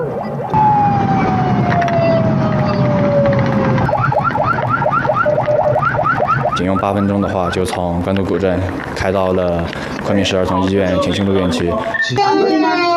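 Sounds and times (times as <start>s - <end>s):
police car siren wailing and yelping: 0.0s - 8.0s
steady rumble of traffic noise: 0.0s - 12.9s
speech: 6.6s - 12.9s.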